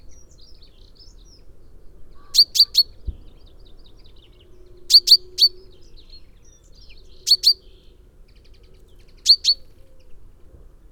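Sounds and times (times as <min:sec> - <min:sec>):
Fringilla coelebs common chaffinch giving chinking notes: 0:02.2 - 0:03.0, 0:07.2 - 0:07.6, 0:09.2 - 0:09.7.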